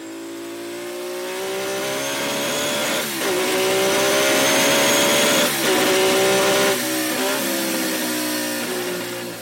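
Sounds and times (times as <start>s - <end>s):
one-and-a-half-litre engine of a vintage Formula One car revving high: 0.0s - 9.4s.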